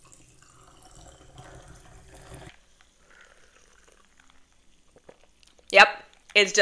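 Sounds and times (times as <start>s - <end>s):
faint fizzing trickle of tonic water: 0.0s - 5.0s
tonic water pouring into a cup: 0.0s - 5.5s
speech: 5.7s - 6.5s.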